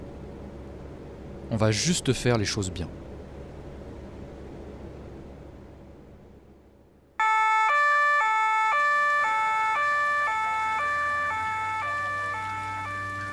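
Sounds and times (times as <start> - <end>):
road rumble: 0.0 - 13.3
speech: 1.5 - 3.0
police car sirens: 7.2 - 13.3.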